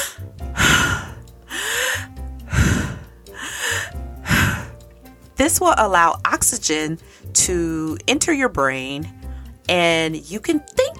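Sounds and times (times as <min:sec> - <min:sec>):
deep breaths inhaling and exhaling: 0:00.0 - 0:04.9, 0:07.0 - 0:07.3, 0:09.2 - 0:09.6
speech: 0:05.5 - 0:10.9.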